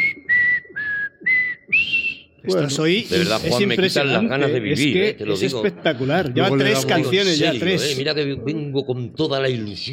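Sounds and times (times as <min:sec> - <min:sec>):
whistled melody of a film song: 0:00.0 - 0:02.4
speech: 0:02.4 - 0:09.9.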